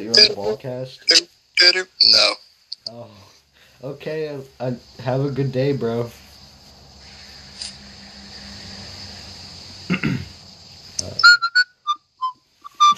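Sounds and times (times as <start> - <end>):
speech: 0.0 - 6.2
low hum: 0.0 - 12.8
person whistling short sharp notes: 11.2 - 12.9.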